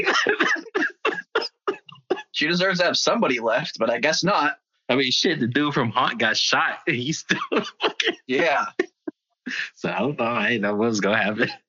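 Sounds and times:
speech: 0:00.0 - 0:00.5, 0:02.4 - 0:08.8, 0:09.5 - 0:11.6
laughter: 0:00.0 - 0:01.5, 0:02.4 - 0:11.6
person imitating a film character's coughing fit: 0:00.0 - 0:02.4, 0:07.1 - 0:10.6, 0:11.3 - 0:11.6.

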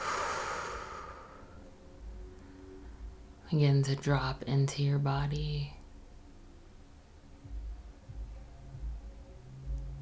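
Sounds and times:
slow breathing during a guided breathing exercise: 0:00.0 - 0:03.2
speech: 0:03.5 - 0:05.8.

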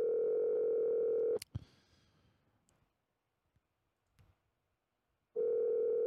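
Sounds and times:
outgoing phone call ringback tone: 0:00.0 - 0:01.4, 0:05.4 - 0:06.0.

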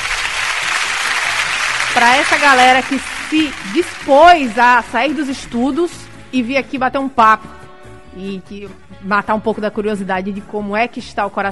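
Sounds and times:
steady applause from a group: 0:00.0 - 0:05.6
speech: 0:02.0 - 0:07.6, 0:08.2 - 0:11.4.

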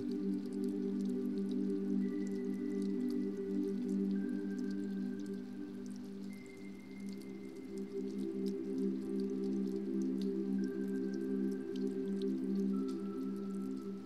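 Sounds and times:
raindrops pattering onto a river: 0:00.0 - 0:14.0.

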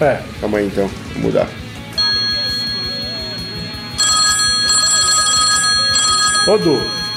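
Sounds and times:
speech: 0:00.0 - 0:01.6, 0:06.4 - 0:07.0
phone ringing with a bright electronic trilling tone: 0:02.0 - 0:07.1.

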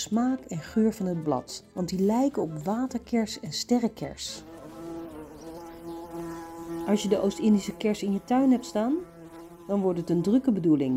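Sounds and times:
speech: 0:00.0 - 0:04.5, 0:06.9 - 0:09.1, 0:09.7 - 0:10.9
bees buzzing: 0:04.0 - 0:10.9.

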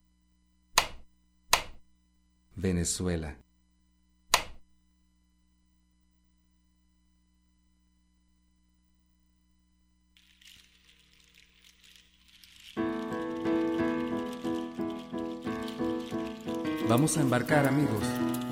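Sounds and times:
sharp click: 0:00.8 - 0:01.8, 0:04.3 - 0:04.6
speech: 0:02.6 - 0:03.4, 0:17.0 - 0:18.4
soft steady rain pattering: 0:10.2 - 0:18.4
rhythmic musical passage: 0:12.5 - 0:18.4.

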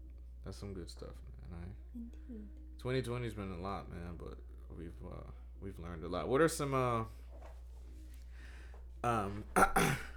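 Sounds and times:
speech: 0:00.5 - 0:07.2, 0:09.0 - 0:10.1
person clearing throat: 0:09.1 - 0:10.1.

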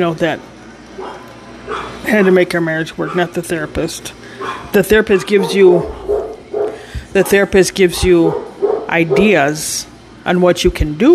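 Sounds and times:
speech: 0:00.0 - 0:01.1, 0:02.1 - 0:06.1, 0:07.1 - 0:11.1
dogs barking: 0:01.0 - 0:03.6, 0:04.3 - 0:09.6.

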